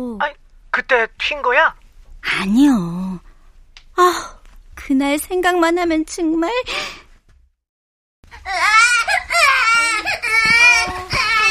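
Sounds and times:
speech: 0.0s - 3.2s, 4.0s - 7.0s
baby crying loudly: 8.3s - 11.4s.

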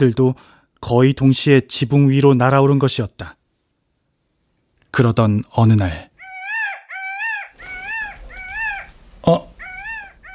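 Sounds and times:
speech: 0.0s - 3.4s, 4.9s - 6.1s, 9.3s - 9.5s
noise: 0.0s - 10.3s
male peacock calling loudly: 6.1s - 10.3s.

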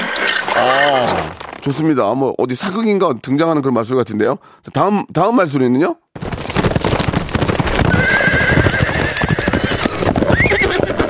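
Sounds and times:
horse neighing: 0.0s - 1.4s, 7.9s - 11.0s
speech: 0.6s - 6.0s
galloping horse hoofbeats: 6.2s - 11.0s.

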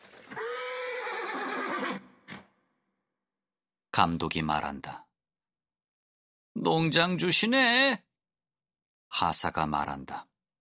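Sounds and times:
horse pulling an open two-wheeled carriage whinnying: 0.2s - 2.5s
speech: 4.0s - 5.0s, 6.6s - 8.1s, 9.1s - 10.3s.

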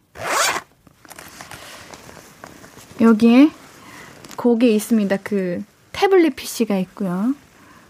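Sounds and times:
study bag zipper pulled open: 0.1s - 0.7s
speech: 3.0s - 3.6s, 4.4s - 7.4s.

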